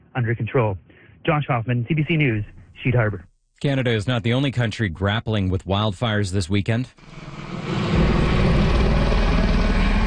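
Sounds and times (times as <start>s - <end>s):
speech: 0.2s - 7.8s
helicopter rotors chopping overhead: 7.1s - 10.0s.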